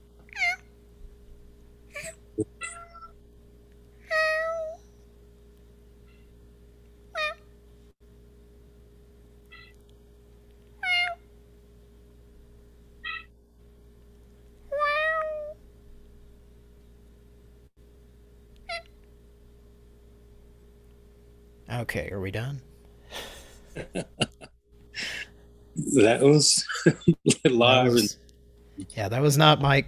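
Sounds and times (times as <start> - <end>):
constant low electrical hum: 0.0 - 29.8
cat meowing: 2.0 - 3.1, 9.5 - 9.8, 10.8 - 11.2, 13.0 - 13.3, 14.7 - 15.6
speech: 2.4 - 2.6, 21.7 - 22.7, 23.8 - 24.2, 26.0 - 28.2, 28.8 - 29.8
laughter: 23.2 - 25.2, 26.4 - 28.1.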